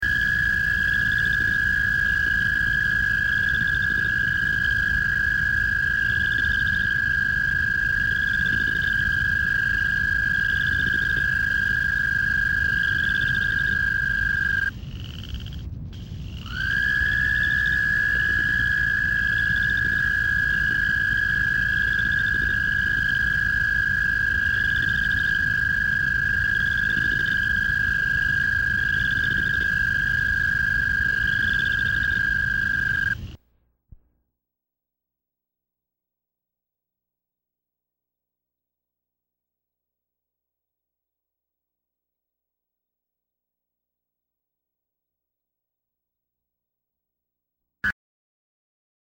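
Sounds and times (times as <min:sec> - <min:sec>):
American toad trilling: 0:00.0 - 0:15.6, 0:16.2 - 0:33.4.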